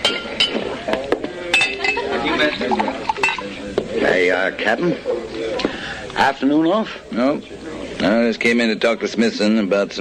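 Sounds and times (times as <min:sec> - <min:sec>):
glass clinking as rye whiskey is served: 0:00.0 - 0:00.7, 0:01.5 - 0:03.5
soft kitchenware clatter: 0:00.0 - 0:03.9
busy murmur of voices: 0:00.0 - 0:09.9
speech: 0:04.4 - 0:05.1, 0:06.2 - 0:09.9.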